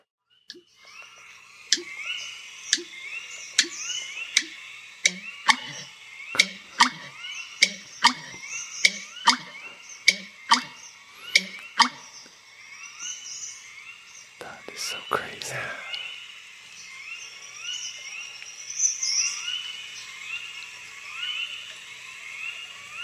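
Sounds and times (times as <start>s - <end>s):
chorus of other birds with upward-sweeping chirps: 0.4s - 21.7s
thin high-pitched hum: 0.5s - 23.0s
American Bittern song of hollow gulping knocks: 6.4s - 9.5s.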